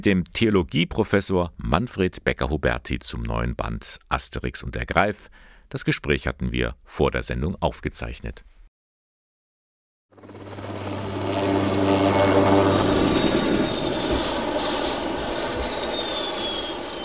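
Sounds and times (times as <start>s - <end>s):
speech: 0.0s - 8.6s
yellow rescue helicopter on emergency mission flying from hospital: 10.2s - 17.0s.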